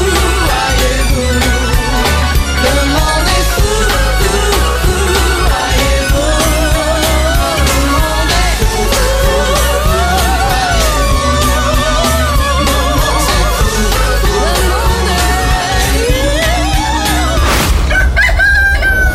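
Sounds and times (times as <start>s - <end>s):
dense busy musical backing: 0.0s - 18.4s
rooster crowing: 17.7s - 19.1s.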